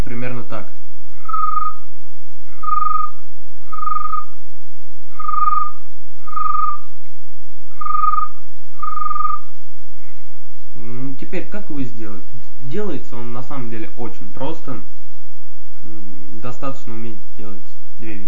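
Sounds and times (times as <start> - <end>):
speech: 0.1 - 0.8, 11.2 - 15.0, 15.8 - 18.2
voice imitating a cricket with snoring and inhaled whistle: 1.1 - 1.9, 2.5 - 4.4, 5.1 - 6.9, 7.7 - 9.5.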